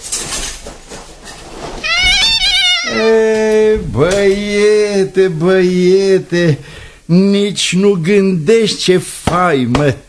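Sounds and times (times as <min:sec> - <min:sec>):
horse whinnying: 0:01.8 - 0:03.4
speech: 0:03.0 - 0:10.0.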